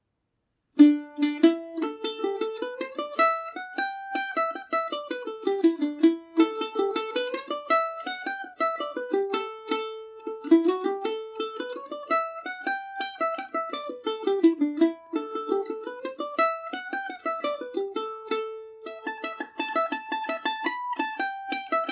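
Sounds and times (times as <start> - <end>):
Irish mandolin playing a tune in A Dorian: 0.8 - 21.9.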